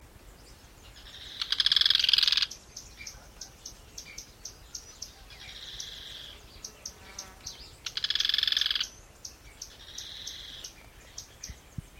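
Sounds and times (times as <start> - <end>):
Certhiaxis cinnamomea calling: 0.5 - 11.9.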